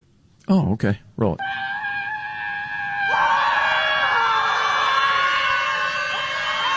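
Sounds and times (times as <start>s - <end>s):
speech: 0.5s - 1.6s
crowd of protesters screaming together at a scream protest: 1.4s - 6.7s.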